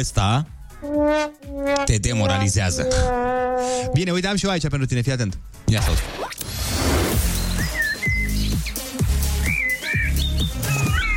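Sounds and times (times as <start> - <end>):
steady rhythmic low musical backing: 0.0 - 5.8, 7.1 - 11.1
speech: 0.0 - 7.3
hummingbird chirping: 0.8 - 1.9.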